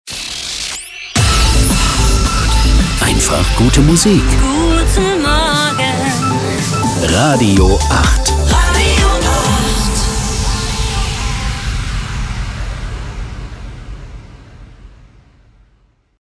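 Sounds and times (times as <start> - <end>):
fast synth transition: 1.2 - 7.0, 8.2 - 15.9
person speaking German: 2.7 - 4.9, 6.8 - 8.9.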